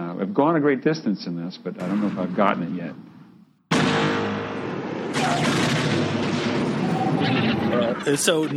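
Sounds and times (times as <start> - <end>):
speech: 0.2 - 3.1, 7.8 - 8.5
massive explosion with rumbling blast: 3.7 - 8.2.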